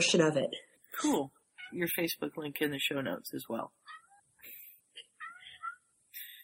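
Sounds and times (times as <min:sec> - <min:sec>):
speech: 0:00.0 - 0:04.0
male cat meowing: 0:05.2 - 0:05.8.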